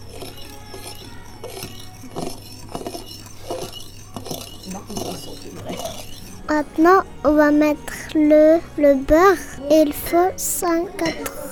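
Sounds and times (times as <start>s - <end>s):
utensil clinking against a bowl mixing egg yolks: 0.0s - 7.0s
speech: 6.5s - 11.4s.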